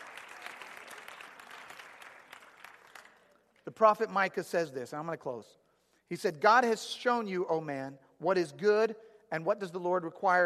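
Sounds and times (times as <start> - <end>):
audience applause: 0.0 - 3.2
speech: 3.7 - 10.4.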